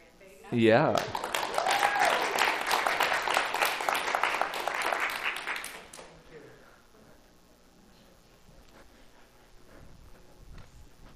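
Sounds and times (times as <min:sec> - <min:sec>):
speech: 0:00.5 - 0:01.2
church congregation applause: 0:00.9 - 0:06.2.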